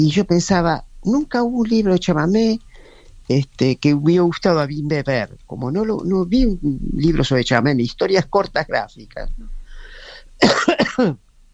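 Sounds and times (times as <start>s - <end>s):
speech: 0.0s - 2.7s, 3.3s - 9.6s, 10.4s - 11.2s
faint hiss: 0.0s - 11.5s
man with a cold coughing harshly: 10.4s - 11.2s.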